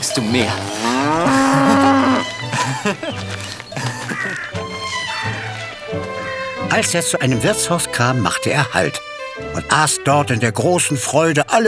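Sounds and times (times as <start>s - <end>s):
cow mooing: 0.0s - 2.5s
laughter: 0.0s - 5.7s
speech: 0.2s - 1.8s, 2.7s - 3.6s, 6.7s - 9.0s, 9.6s - 11.6s.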